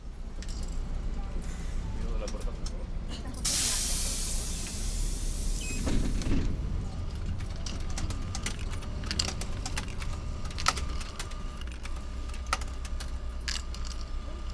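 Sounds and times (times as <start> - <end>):
moving city bus engine rumble: 0.0 - 14.5
loud hissing whoosh: 3.5 - 6.3
rattles and clicks inside a city bus: 5.9 - 14.5.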